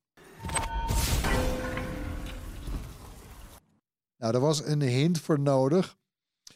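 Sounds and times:
video game Titan character super ability burst: 0:00.8 - 0:02.6
speech: 0:04.2 - 0:06.0.

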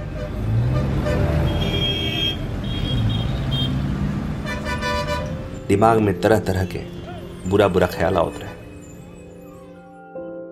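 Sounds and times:
short car horn toots: 0:00.0 - 0:05.4
road noise: 0:00.0 - 0:10.0
speech: 0:05.7 - 0:08.6.

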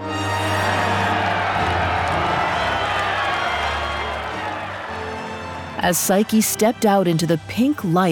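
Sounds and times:
crowd of 1000 people roaring and cheering in a palace courtyard: 0:00.0 - 0:06.9
speech: 0:05.8 - 0:08.1.

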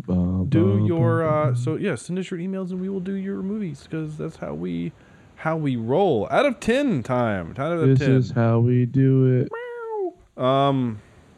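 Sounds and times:
speech: 0:00.0 - 0:09.6, 0:10.4 - 0:11.1
human voice imitating a cat meow: 0:00.1 - 0:01.7, 0:09.5 - 0:10.2.

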